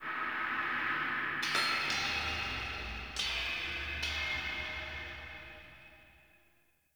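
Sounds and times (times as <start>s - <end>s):
echoing crypt ambience: 0.0s - 5.4s.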